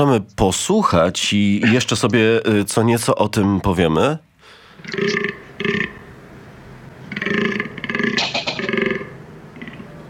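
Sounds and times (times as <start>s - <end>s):
speech: 0.0s - 5.8s
mating-season animal burp-like belching grunts: 4.8s - 6.1s, 7.1s - 10.0s.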